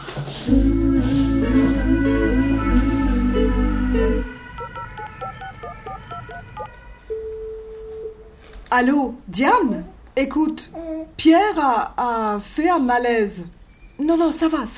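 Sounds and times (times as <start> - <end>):
speech: 0.2 - 0.9, 8.7 - 14.7
steady low tone: 0.5 - 4.8
loud music: 0.5 - 6.7
touch-tone beeps of a telephone number being dialed: 4.6 - 8.0.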